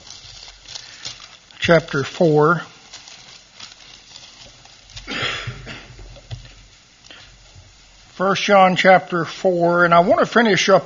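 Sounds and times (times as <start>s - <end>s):
faint shuffling and rustling: 0.0s - 8.2s
speech: 1.6s - 2.7s, 8.2s - 10.8s
audience member coughing: 5.0s - 6.0s.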